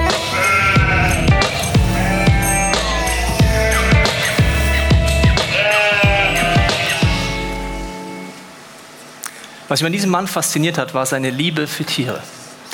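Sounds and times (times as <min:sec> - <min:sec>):
flock of sheep bleating: 0:00.1 - 0:04.6, 0:05.3 - 0:07.7
speech: 0:09.7 - 0:12.4.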